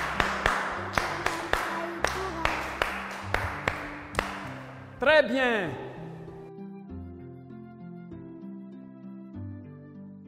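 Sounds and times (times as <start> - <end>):
group of children clapping in a classroom: 0.0 - 4.8
speech: 5.0 - 5.9.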